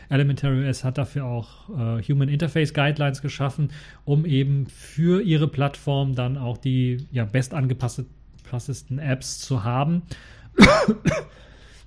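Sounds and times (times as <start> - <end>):
speech: 0.1 - 11.5
person coughing: 10.6 - 11.4.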